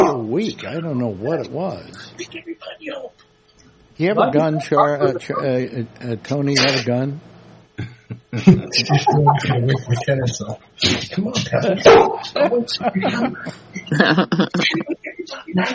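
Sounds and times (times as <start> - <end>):
speech: 0.2 - 3.3, 4.0 - 15.7
laughter: 4.2 - 5.8, 7.8 - 15.7
dog barking: 11.8 - 12.4.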